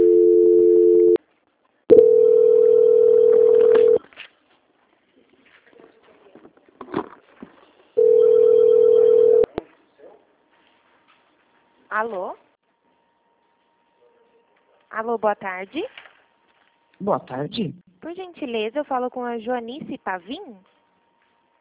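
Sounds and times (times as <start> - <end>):
telephone ringing tone during call transfer: 0.0 - 1.2, 1.9 - 4.0, 8.0 - 9.5
speech: 12.0 - 12.4, 15.0 - 16.0, 17.0 - 20.7.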